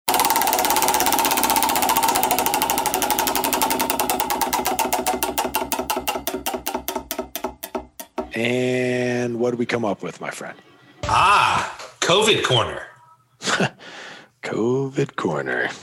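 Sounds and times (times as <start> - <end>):
heavy prize wheel spinning: 0.0 - 8.5
speech: 8.4 - 11.5, 12.1 - 12.9, 14.5 - 15.8.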